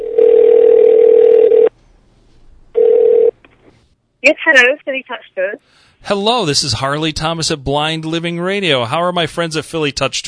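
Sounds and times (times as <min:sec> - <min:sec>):
telephone ringback tone of a call to a tour company: 0:00.0 - 0:01.7, 0:02.8 - 0:03.3
speech: 0:04.2 - 0:10.2.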